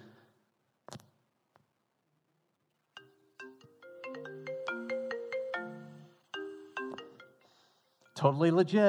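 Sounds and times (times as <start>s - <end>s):
phone ringtone from a fake-call app: 3.0s - 7.5s
speech: 8.2s - 8.8s.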